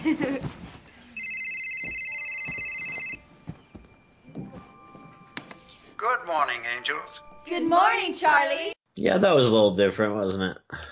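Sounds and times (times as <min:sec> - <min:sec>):
telephone ringing with a bright electronic tone: 0:01.2 - 0:03.2
speech: 0:06.0 - 0:10.9.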